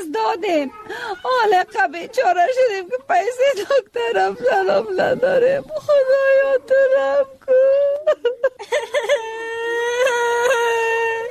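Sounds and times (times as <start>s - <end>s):
speech: 0.1s - 10.0s
child crying: 0.6s - 1.6s, 4.1s - 11.2s.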